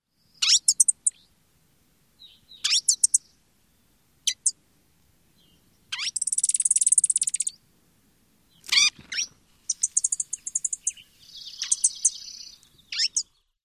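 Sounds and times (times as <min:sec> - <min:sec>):
Green-tailed Towhee calls: 0:00.3 - 0:01.3, 0:02.2 - 0:04.6, 0:05.4 - 0:07.6, 0:08.5 - 0:13.6.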